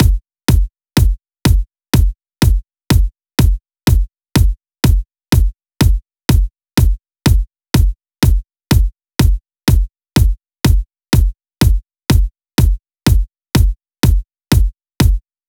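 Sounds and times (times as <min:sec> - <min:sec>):
percussion kick drum on drum pads: 0:00.0 - 0:15.4.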